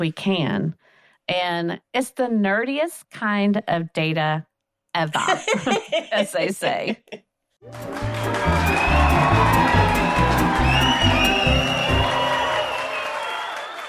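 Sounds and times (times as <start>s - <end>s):
speech: 0.0s - 8.9s
laughter: 5.2s - 7.2s
large crowd clapping and cheering: 7.6s - 13.8s
scattered whoops and shouts: 8.2s - 13.8s.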